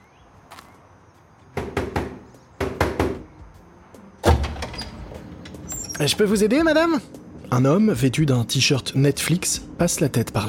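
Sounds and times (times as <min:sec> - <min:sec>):
woman knocking on the metal door of a warehouse: 0:01.6 - 0:03.3
speech: 0:06.0 - 0:10.4.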